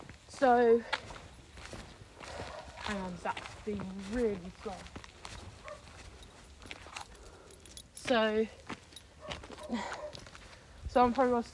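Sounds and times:
speech: 0.4s - 1.0s, 2.9s - 5.0s, 8.1s - 8.6s, 9.7s - 10.0s, 10.9s - 11.5s
dog barking: 2.4s - 2.9s, 5.6s - 6.0s, 9.2s - 10.2s.

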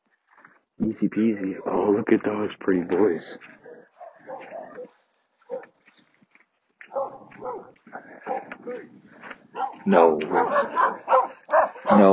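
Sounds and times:
speech: 0.8s - 3.6s, 9.9s - 11.0s, 11.9s - 12.1s
dog barking and yipping: 3.6s - 5.8s, 6.8s - 8.8s, 9.5s - 12.1s.

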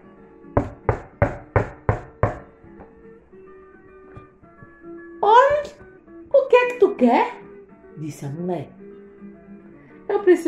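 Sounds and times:
man knocking on a wooden door: 0.6s - 3.0s, 4.1s - 6.5s
speech: 7.0s - 7.4s, 8.0s - 8.8s, 10.3s - 10.4s.

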